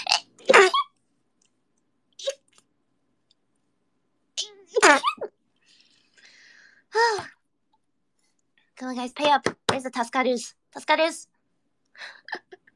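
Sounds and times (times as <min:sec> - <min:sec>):
person sneezing: 0:00.0 - 0:00.9
speech: 0:08.8 - 0:11.4, 0:12.0 - 0:12.4.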